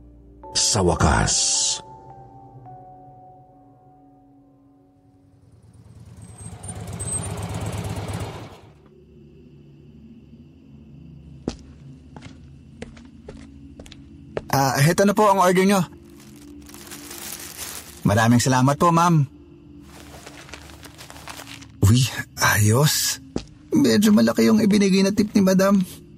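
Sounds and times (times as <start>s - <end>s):
speech: 0.6s - 1.9s, 14.6s - 16.0s, 18.1s - 19.3s, 21.9s - 26.0s
motorcycle engine revving: 5.4s - 8.8s.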